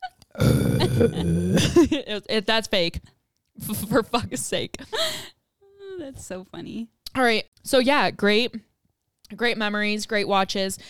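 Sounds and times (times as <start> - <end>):
forced burp: 0.3 - 1.9
speech: 1.0 - 5.4, 6.0 - 8.7, 9.3 - 10.8.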